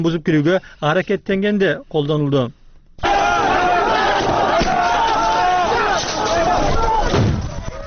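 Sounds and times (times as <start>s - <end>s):
speech: 0.0s - 2.6s
crowd of migrants shouting at a border crossing: 3.0s - 7.8s.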